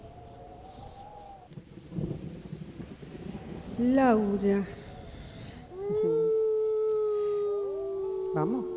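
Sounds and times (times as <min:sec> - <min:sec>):
neighborhood dogs howling at night in the city: 0:00.0 - 0:01.5, 0:03.3 - 0:08.7
speech: 0:03.8 - 0:04.8, 0:08.4 - 0:08.7.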